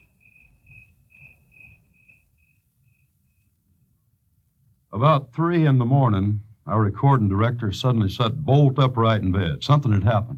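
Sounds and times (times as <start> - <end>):
crickets chirping at night: 0.0 - 4.6
speech: 5.0 - 10.3.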